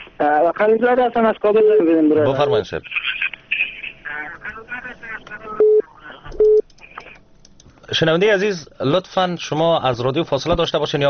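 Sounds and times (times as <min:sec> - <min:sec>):
speech: 0:00.2 - 0:03.2, 0:07.9 - 0:11.0
telephone line busy-signal beeps: 0:05.6 - 0:05.8, 0:06.4 - 0:06.6.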